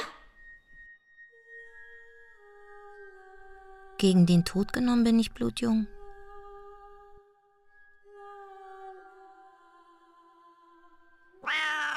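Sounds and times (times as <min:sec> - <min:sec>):
speech: 0:04.0 - 0:06.0
cat meowing: 0:11.4 - 0:11.9.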